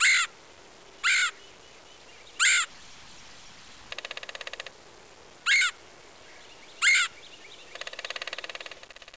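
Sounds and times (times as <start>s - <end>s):
red-headed woodpecker giving harsh burry calls: 0.0s - 0.4s, 1.0s - 1.6s, 2.3s - 2.8s, 3.9s - 4.8s, 5.4s - 9.1s.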